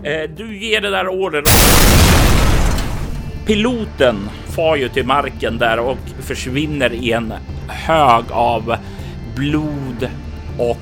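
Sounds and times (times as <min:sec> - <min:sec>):
speech: 0:00.0 - 0:02.5, 0:03.5 - 0:10.8
grenade explosion: 0:01.5 - 0:03.8.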